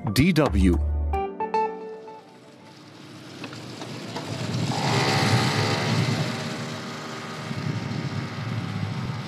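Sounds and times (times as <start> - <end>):
speech: 0.1 - 0.9
traffic noise: 2.2 - 9.2
small motorbike engine revving through city streets: 2.6 - 9.2.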